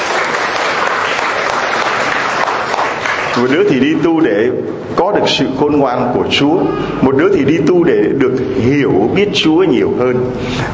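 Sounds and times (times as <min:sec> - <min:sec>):
crowd applauding: 0:00.0 - 0:04.2
speech: 0:03.4 - 0:10.7.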